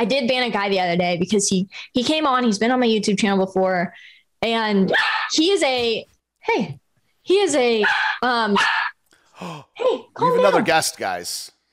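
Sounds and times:
speech: 0:00.0 - 0:11.7
dog barking and yipping: 0:04.9 - 0:05.4, 0:07.8 - 0:09.0.

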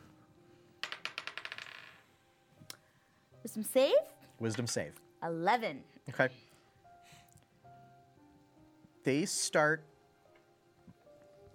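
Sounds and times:
die clattering across a hard tabletop: 0:00.8 - 0:02.0
speech: 0:03.4 - 0:06.4, 0:09.0 - 0:09.9.

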